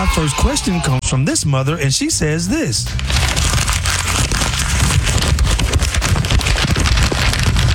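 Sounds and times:
speech: 0.2 - 3.4
paper rustling and crinkling: 3.0 - 7.7.

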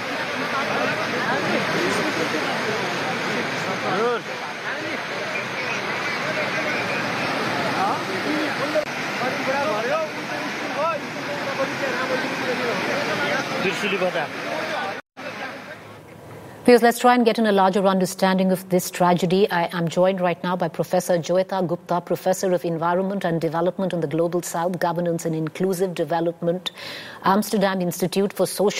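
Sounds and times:
floodwater rushing through streets and buildings in the Trishuli area of Nepal: 0.0 - 16.0
many people talking and calling out: 0.0 - 16.0
speech: 3.7 - 6.9, 8.0 - 14.7, 16.7 - 28.7.

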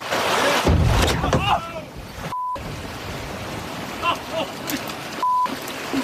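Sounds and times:
heavy thud and splash of a whale crashing through a small fishing boat door: 0.0 - 3.6
wind-buffeted water noise off the Long Island coast of New York: 0.0 - 6.0
two fishermen shouting excitedly: 1.2 - 2.0
short censor bleeps: 2.3 - 2.6, 5.2 - 5.5.

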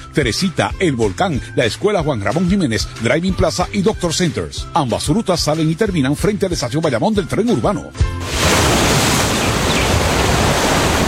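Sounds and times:
speech: 0.2 - 8.6
ocean waves washing against the shore: 8.2 - 11.0.

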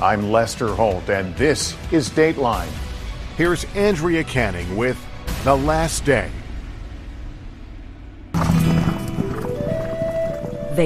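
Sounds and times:
speech: 0.0 - 6.4
horse hooves clip-clopping: 8.4 - 10.8.

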